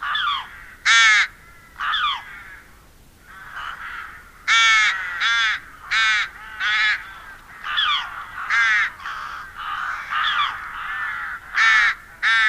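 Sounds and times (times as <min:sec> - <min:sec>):
rook giving loud hoarse grating caws: 0:00.0 - 0:12.4.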